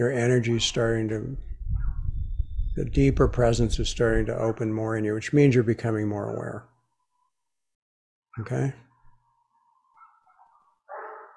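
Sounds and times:
speech: 0.0s - 1.5s, 2.8s - 6.7s, 8.4s - 8.8s
dogs barking outside: 9.5s - 11.3s.

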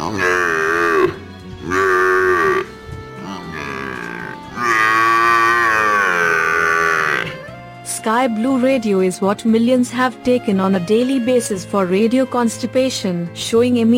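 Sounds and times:
water buffalo bellowing: 0.0s - 7.6s
speech: 8.1s - 13.9s.

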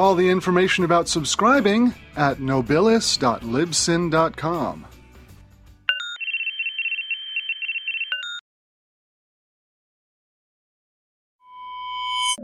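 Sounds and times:
speech: 0.0s - 4.9s
electronic phone ringing tone with beeps and warbling trill: 5.9s - 8.4s.

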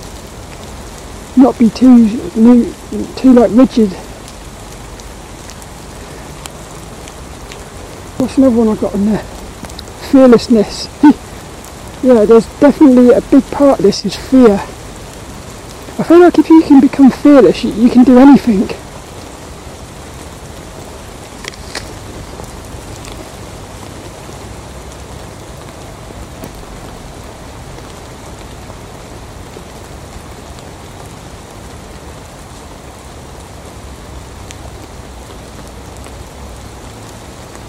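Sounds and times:
rain pattering on a hard surface: 0.0s - 37.6s
speech: 1.4s - 4.0s, 8.2s - 9.4s, 10.1s - 11.2s, 12.0s - 14.7s, 16.0s - 18.8s.

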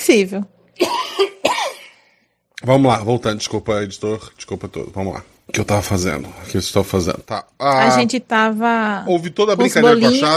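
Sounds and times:
speech: 0.1s - 0.9s, 2.6s - 10.3s
harsh raspy coughs: 0.8s - 2.0s.

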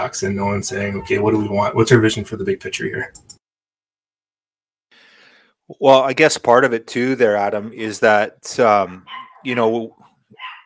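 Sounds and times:
speech: 0.0s - 3.4s, 5.7s - 10.5s
dog barking: 9.0s - 10.6s.

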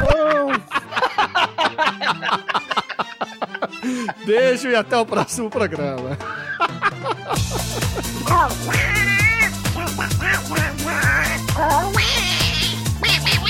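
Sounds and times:
laughter: 0.0s - 4.2s, 5.1s - 13.4s
speech: 4.3s - 9.2s, 10.0s - 12.3s
song with a steady stepping bass line and synths: 7.4s - 13.4s
cat-like meowing wails: 8.6s - 12.8s.

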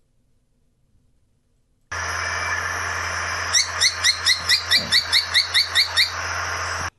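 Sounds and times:
steady hiss: 0.0s - 6.9s
Kempfer's tody-tyrant chirping: 1.9s - 6.9s.

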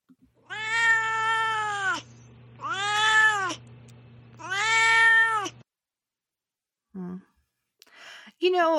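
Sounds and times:
pet cat meowing: 0.4s - 3.6s, 4.4s - 5.6s
speech: 8.4s - 8.7s.

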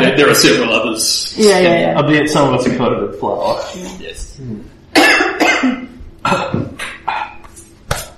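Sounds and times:
speech: 0.1s - 6.8s
harsh coughs: 4.9s - 8.1s.

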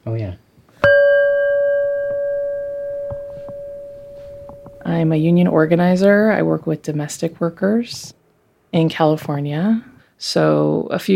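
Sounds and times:
speech: 0.0s - 0.4s, 4.9s - 11.1s
bell struck with bright metallic tone: 0.8s - 5.4s.

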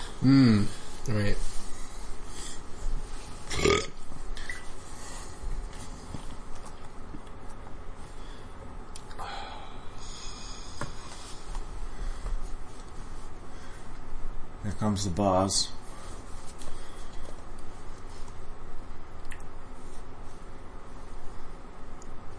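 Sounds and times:
steady hiss: 0.0s - 22.3s
person burping: 0.2s - 0.7s, 3.5s - 4.0s
speech: 0.2s - 1.5s, 14.9s - 15.8s.

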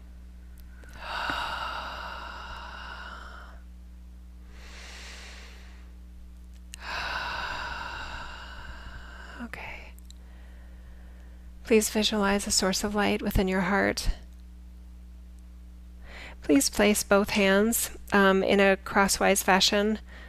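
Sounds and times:
faint steady hum: 0.0s - 20.2s
slow deep breathing during guided meditation: 0.7s - 3.6s, 4.4s - 6.0s, 6.8s - 9.5s, 10.2s - 11.5s
speech: 11.7s - 14.2s, 16.5s - 20.2s.

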